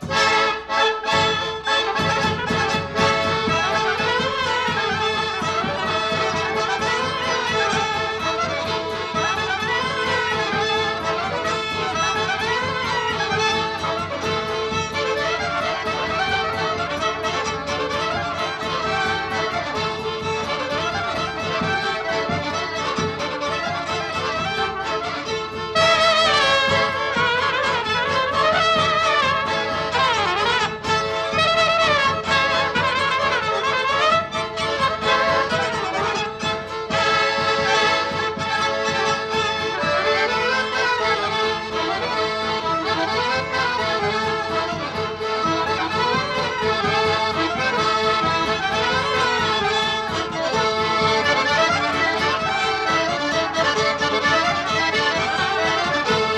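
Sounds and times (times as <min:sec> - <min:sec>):
folk band playing an oberek: 0:00.0 - 0:56.3.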